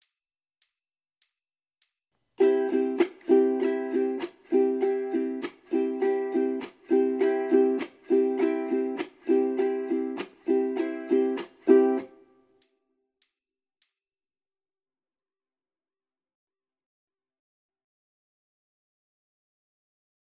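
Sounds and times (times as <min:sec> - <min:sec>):
ukulele chnk strum: 0:02.4 - 0:12.3.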